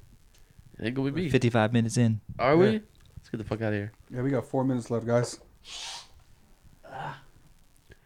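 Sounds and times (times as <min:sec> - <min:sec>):
speech: 0:00.8 - 0:06.0
airy exhale: 0:05.6 - 0:06.2
breathy sneeze caused by allergies: 0:05.7 - 0:06.2.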